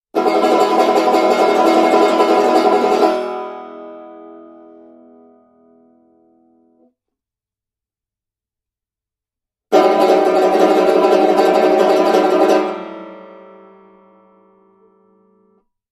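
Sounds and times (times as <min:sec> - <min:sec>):
banjo plectrum tremolo: 0:00.2 - 0:05.4, 0:09.7 - 0:14.7.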